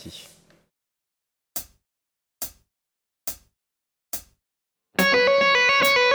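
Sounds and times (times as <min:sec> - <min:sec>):
single note tapping: 0:05.0 - 0:06.0.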